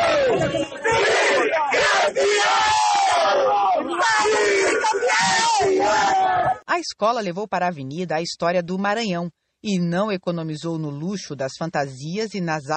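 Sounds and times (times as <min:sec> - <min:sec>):
samba school directors shouting and cheering in celebration: 0:00.0 - 0:06.6
speech: 0:06.8 - 0:12.7.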